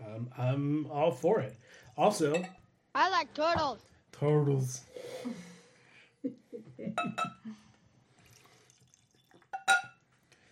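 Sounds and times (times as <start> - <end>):
speech: 0.2 - 5.5, 6.2 - 7.6
bright glassy clink: 2.0 - 2.7, 7.0 - 7.4, 9.2 - 10.0
bourbon whiskey pouring into a glass: 8.2 - 10.0.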